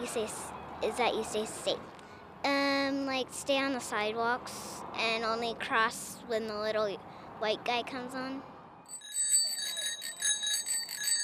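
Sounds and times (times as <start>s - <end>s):
speech: 0.1s - 8.5s
bicycle bell ringing: 8.9s - 11.2s.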